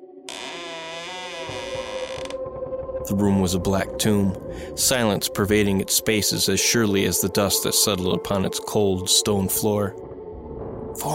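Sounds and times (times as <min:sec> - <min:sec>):
door creaking open: 0:00.3 - 0:02.4
speech: 0:03.1 - 0:10.1.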